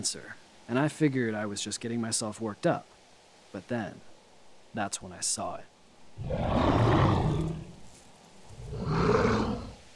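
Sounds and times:
speech: 0.0 - 2.9, 3.5 - 4.1, 4.7 - 7.3
wolf growling: 6.2 - 7.8, 8.5 - 9.8.

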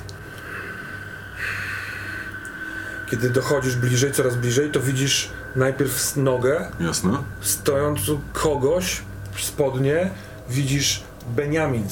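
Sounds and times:
heavy raspy breathing: 0.2 - 6.0, 10.1 - 10.5
speech: 3.1 - 11.9.

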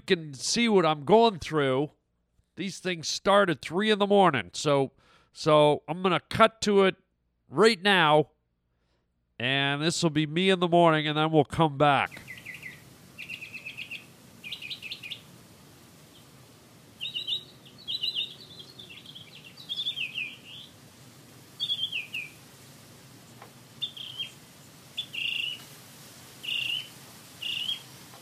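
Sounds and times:
speech: 0.1 - 2.0, 2.6 - 8.3, 9.4 - 12.3
bird chirping and trilling before dawn: 12.1 - 15.3, 17.0 - 20.9, 21.6 - 22.4, 23.8 - 25.7, 26.4 - 27.9.

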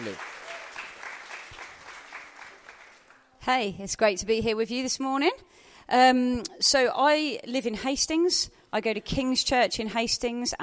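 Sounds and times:
audience applause: 0.0 - 3.3
speech: 0.1 - 0.3, 3.4 - 10.6.

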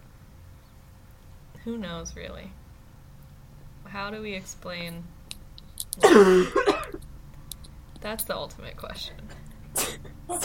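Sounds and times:
speech: 1.6 - 2.6, 3.8 - 5.2, 6.0 - 7.0, 8.0 - 10.4
person coughing with a rough throaty rasp: 6.0 - 7.0, 9.8 - 10.4.

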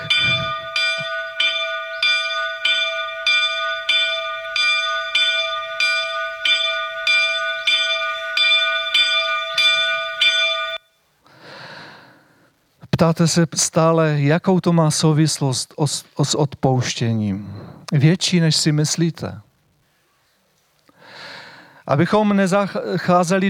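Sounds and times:
church bell ringing in a bell tower: 0.0 - 10.9
speech: 13.0 - 19.5, 21.9 - 23.4.

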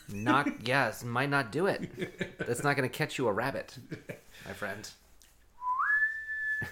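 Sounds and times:
speech: 0.1 - 5.0
single shrill whistle note sliding upward: 5.6 - 6.7.

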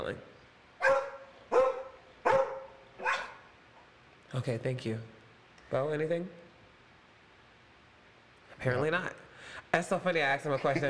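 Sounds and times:
dog barking: 0.8 - 3.5
speech: 4.3 - 6.4, 8.6 - 10.8.

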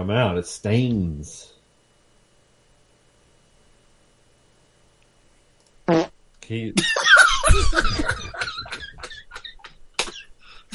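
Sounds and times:
speech: 0.0 - 1.6, 5.9 - 7.0, 7.6 - 8.4
short buzzy fart noise: 5.9 - 6.2
people snickering and laughing: 6.8 - 10.2.

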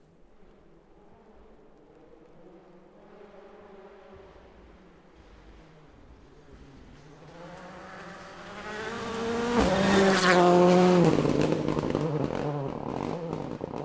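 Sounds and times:
rally car passing during testing: 0.1 - 13.8.

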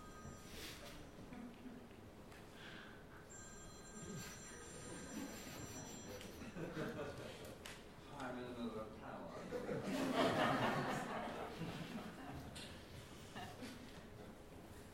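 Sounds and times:
mobile phone ringing with electronic tonal ringtone: 0.0 - 1.2, 3.2 - 6.6
laughter: 4.7 - 7.6, 9.3 - 14.1.

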